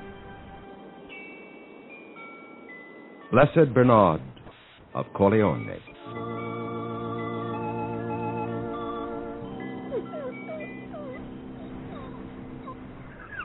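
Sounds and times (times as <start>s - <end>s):
music: 0.0s - 4.4s, 5.0s - 13.4s
speech: 3.3s - 6.4s
sick dog whimpering: 9.6s - 13.4s.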